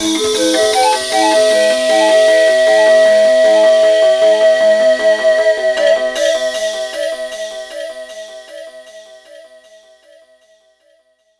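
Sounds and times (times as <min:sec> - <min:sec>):
wash flute: 0:00.0 - 0:07.2.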